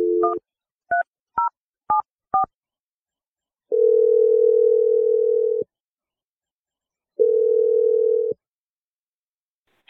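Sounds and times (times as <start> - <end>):
long steady telephone ringing tones: 0.0 - 0.4, 3.7 - 5.7, 7.2 - 8.4.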